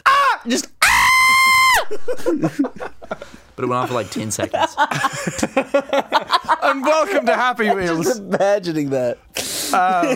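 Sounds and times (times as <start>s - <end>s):
voice imitating a loud high-pitched intro shriek: 0.0s - 2.0s
speech: 0.4s - 0.7s, 1.9s - 10.1s
laughter: 1.6s - 8.9s, 9.7s - 10.1s.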